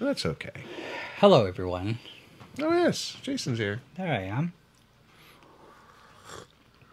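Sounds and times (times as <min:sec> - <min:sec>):
speech: 0:00.1 - 0:04.6
person sipping coffee: 0:05.3 - 0:06.9.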